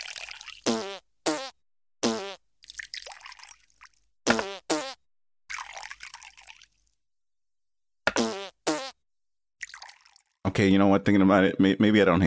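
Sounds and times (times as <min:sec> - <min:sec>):
sake being poured: 0:00.0 - 0:00.7, 0:02.6 - 0:04.6, 0:05.5 - 0:07.0, 0:09.6 - 0:10.4
shoes squeaking on a hard floor: 0:04.3 - 0:04.9
speech: 0:10.6 - 0:12.2.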